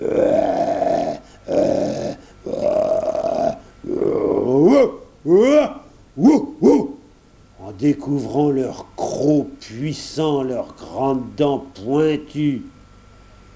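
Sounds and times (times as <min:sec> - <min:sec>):
human voice imitating two huge dogs growling fiercely: 0:00.0 - 0:07.1
speech: 0:07.9 - 0:12.7.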